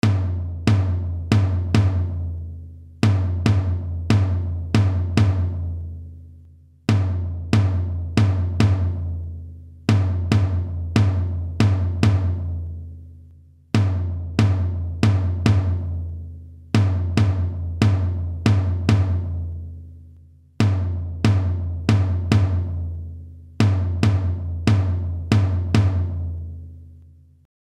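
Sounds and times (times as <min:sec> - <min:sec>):
davul drum: 0:00.0 - 0:06.3, 0:06.9 - 0:26.8.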